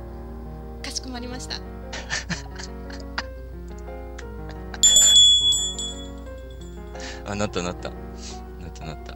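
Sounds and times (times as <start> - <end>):
speech: 1.0 - 2.5, 7.3 - 9.1
small bell on a café table ringing: 4.8 - 6.9.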